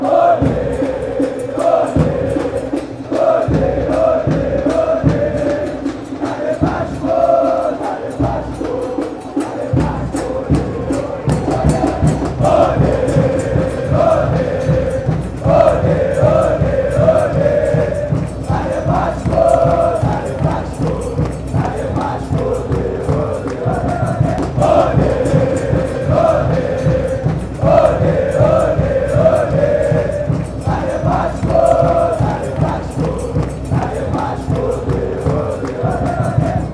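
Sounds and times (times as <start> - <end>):
fans chanting: 0.0 - 36.7.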